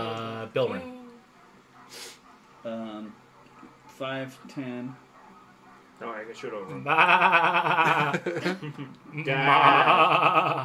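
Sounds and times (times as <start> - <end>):
speech: 0.5 - 1.0, 1.9 - 3.2, 4.0 - 5.0, 6.0 - 10.6
laughter: 6.7 - 8.9, 9.5 - 10.6
goats and sheep bleating: 9.3 - 10.2.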